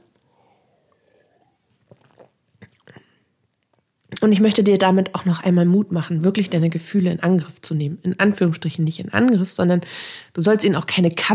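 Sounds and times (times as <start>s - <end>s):
person swallowing water: 0.0s - 3.2s
person taking a quiet sip of water: 0.0s - 4.2s
soft wet mouth clicks: 0.0s - 4.2s
speech: 4.2s - 11.3s.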